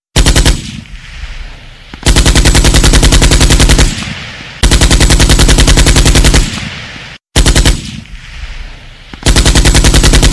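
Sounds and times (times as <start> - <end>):
machine gun ringtone: 0.2 - 0.8, 2.0 - 6.8, 7.4 - 8.0, 9.2 - 10.3.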